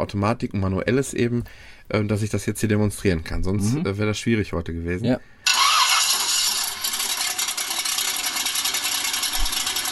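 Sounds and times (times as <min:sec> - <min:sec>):
speech: 0:00.0 - 0:05.3
car engine starting and idling: 0:05.5 - 0:09.9.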